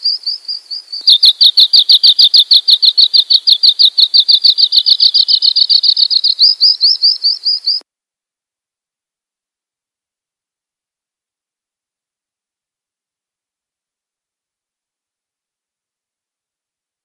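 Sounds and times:
Oriental magpie-robin singing chip series: 0.0s - 7.8s.

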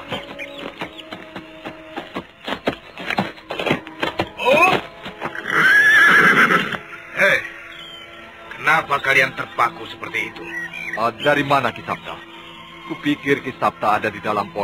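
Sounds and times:
horse neighing as a rider approaches: 4.4s - 8.0s
speech: 8.9s - 12.3s, 12.9s - 14.6s.

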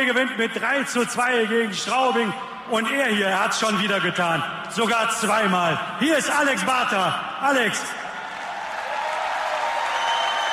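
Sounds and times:
speech: 0.0s - 8.0s
crowd applauding: 8.0s - 10.5s.

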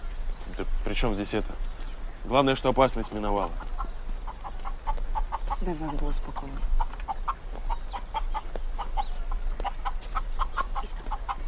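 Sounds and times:
speech: 0.6s - 3.7s, 5.6s - 6.7s
chicken clucking with higher squawks: 3.1s - 11.4s.

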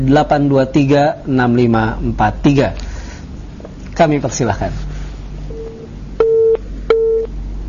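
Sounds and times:
speech: 0.0s - 2.8s, 4.0s - 4.9s
telephone disconnect tone beeps on a call-in line: 5.5s - 7.3s.

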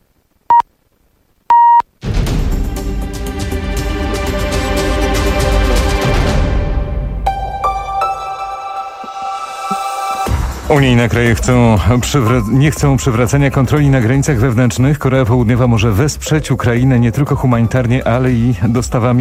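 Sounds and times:
time signal beeps marking the hour on a Polish radio station: 1.5s - 1.8s
loud dense burst of music: 2.0s - 13.6s
speech: 10.7s - 19.1s.

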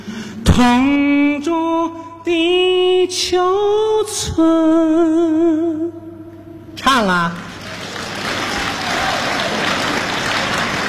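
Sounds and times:
speech: 0.6s - 6.0s, 6.8s - 7.5s
audience applause at a live comedy stage performance: 7.4s - 10.8s.

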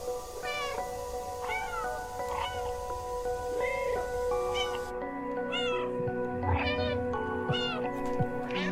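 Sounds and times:
constant tonal background: 0.0s - 8.7s
domestic cat meowing: 0.4s - 0.8s, 1.4s - 2.8s, 3.6s - 4.9s, 5.5s - 5.9s, 6.5s - 7.9s, 8.5s - 8.7s.

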